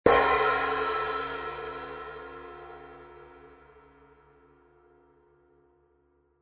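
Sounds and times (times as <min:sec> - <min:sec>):
15in Latin multi crash cymbal hit with hand stick: 0:00.1 - 0:04.0.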